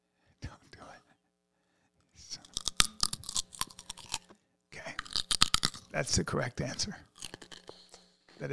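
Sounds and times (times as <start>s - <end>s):
raw carrot being bitten and chewed: 2.4s - 6.0s, 7.0s - 7.9s
speech: 6.0s - 7.1s, 8.4s - 8.5s.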